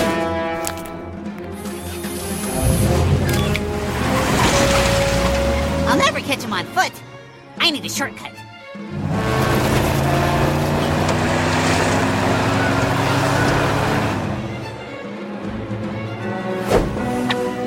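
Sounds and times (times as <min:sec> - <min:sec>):
speeding truck engine roaring: 0:00.1 - 0:07.0, 0:08.8 - 0:17.6
speech: 0:07.7 - 0:08.4.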